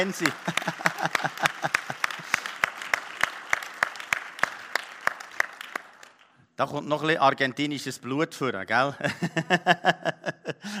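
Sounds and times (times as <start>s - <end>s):
speech: 0.0s - 1.5s, 6.6s - 10.7s
laughter: 0.0s - 2.6s, 9.0s - 10.7s
audience applause: 0.0s - 6.3s.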